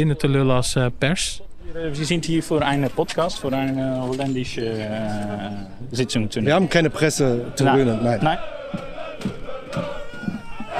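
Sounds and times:
speech: 0:00.0 - 0:10.0
football supporters chanting outside a stadium: 0:05.2 - 0:10.7.

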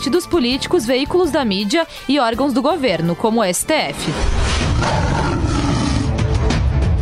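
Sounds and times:
speech: 0:00.0 - 0:05.1
lion roaring: 0:04.1 - 0:06.6.

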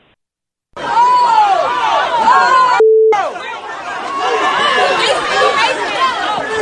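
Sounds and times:
crowd shouting and jeering at police officers: 0:00.8 - 0:06.6
steady electronic beep: 0:02.8 - 0:03.2.

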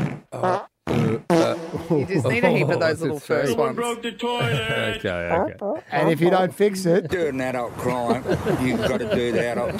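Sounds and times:
fart sound effects from soundboard buttons: 0:00.0 - 0:01.9
speech: 0:00.4 - 0:01.2, 0:01.9 - 0:09.7
laughter: 0:01.8 - 0:03.2, 0:04.3 - 0:05.1, 0:06.1 - 0:09.7.

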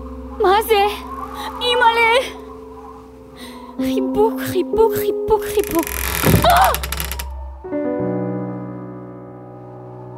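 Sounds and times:
speech: 0:00.4 - 0:02.4, 0:03.8 - 0:06.9
door creaking open: 0:05.5 - 0:07.4.

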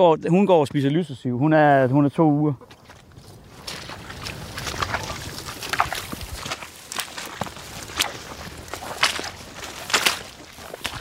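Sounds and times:
speech: 0:00.0 - 0:02.8
footsteps in rubber boots on soft ground in a cattle pasture: 0:02.6 - 0:10.9.

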